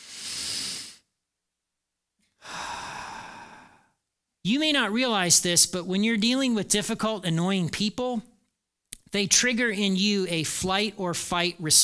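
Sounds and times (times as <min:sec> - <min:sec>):
deep breaths during a calming exercise: 0:00.0 - 0:01.1, 0:02.3 - 0:04.0
speech: 0:04.4 - 0:08.3, 0:09.1 - 0:11.8.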